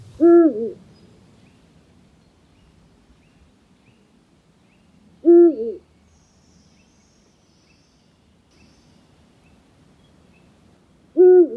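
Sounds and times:
Eurasian eagle-owl hooting: 0.0s - 0.8s, 5.2s - 5.8s, 11.1s - 11.5s.

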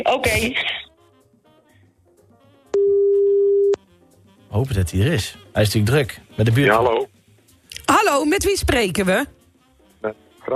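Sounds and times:
speech: 0.0s - 0.8s, 4.6s - 7.1s, 8.0s - 9.4s, 10.0s - 10.5s
telephone ringing tone while a call is placed: 2.7s - 3.8s.

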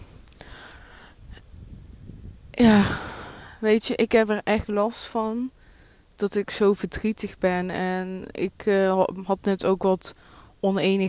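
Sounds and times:
strong wind buffeting the microphone: 1.1s - 3.6s
speech: 2.6s - 3.0s, 3.6s - 5.6s, 6.2s - 11.0s.

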